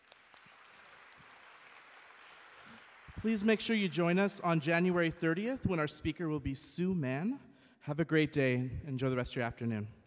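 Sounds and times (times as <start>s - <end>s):
audience clapping in a room: 0.0s - 5.1s
speech: 3.2s - 10.0s.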